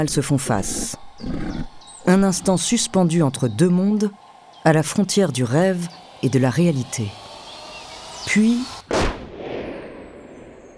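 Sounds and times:
speech: 0.0 - 7.2, 8.2 - 9.1
gunshot fired outdoors with long rumbling echo: 8.9 - 10.7.

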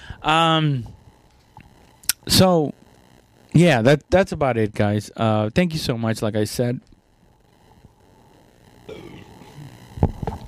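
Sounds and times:
speech: 0.2 - 1.0, 2.3 - 2.8, 3.5 - 6.9
long low gurgling belch: 8.9 - 9.7.

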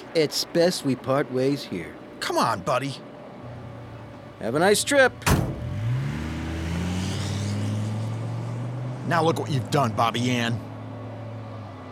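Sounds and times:
speech: 0.1 - 3.1, 4.4 - 5.4, 9.1 - 10.7
car engine revving and driving away: 5.2 - 10.2.

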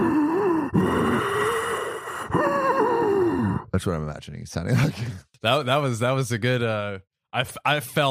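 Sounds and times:
person imitating heavy breathing down someone's neck: 0.0 - 3.7
speech: 3.8 - 8.0.

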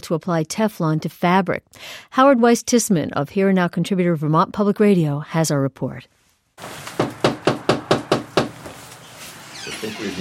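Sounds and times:
speech: 0.1 - 7.0, 9.8 - 10.1
knocking on a front door in North Bennington Vermont: 7.0 - 8.8.

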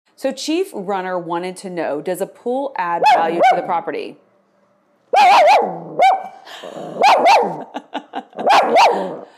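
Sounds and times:
speech: 0.2 - 4.2, 5.2 - 8.0, 8.6 - 9.3
dog barking: 3.0 - 3.8, 5.1 - 6.4, 7.0 - 7.7, 8.4 - 9.3
laughter: 7.5 - 9.3.

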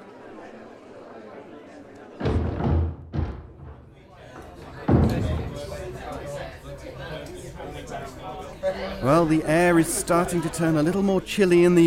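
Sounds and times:
murmur of an evening crowd's voices: 0.0 - 11.8
heavy door slamming shut: 2.2 - 4.1, 4.7 - 5.9
soft knocks: 2.2 - 5.9
speech: 7.9 - 11.8.

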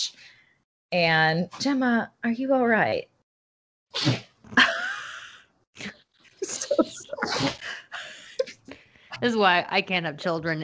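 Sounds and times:
speech: 0.9 - 3.1, 9.2 - 10.6
person sneezing: 4.0 - 4.3, 6.7 - 7.6
laughter: 6.4 - 8.5.

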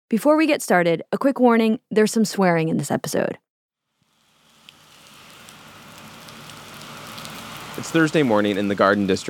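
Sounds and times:
speech: 0.1 - 3.4, 7.8 - 9.2
steady rain pouring outdoors: 4.0 - 9.2.

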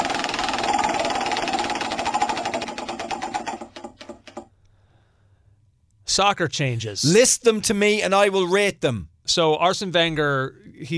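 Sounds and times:
prize wheel spinning and clicking against its pointer: 0.0 - 4.5
speech: 6.1 - 10.9.

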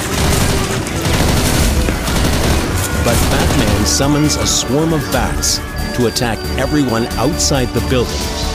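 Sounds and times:
heavy gunfire from a SWAT team amid rubble: 0.0 - 4.8
speech: 3.1 - 8.4.

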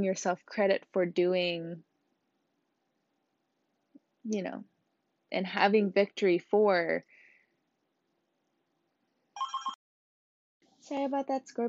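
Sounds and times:
speech: 0.0 - 1.9, 4.2 - 4.7, 5.3 - 7.2, 10.9 - 11.6
house telephone ringing with electronic trill: 9.4 - 9.8.

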